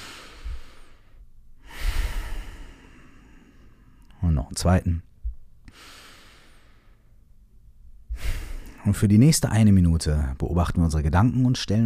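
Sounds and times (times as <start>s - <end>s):
deep breathing during a guided relaxation exercise: 0.0s - 4.2s, 5.6s - 7.3s, 8.0s - 8.9s
speech: 4.4s - 5.1s, 8.8s - 11.8s.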